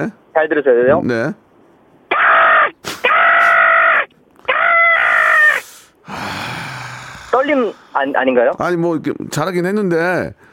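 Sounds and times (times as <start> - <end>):
speech: 0.0 - 1.4, 7.4 - 10.5
person imitating a crow with harsh caws: 2.1 - 7.4.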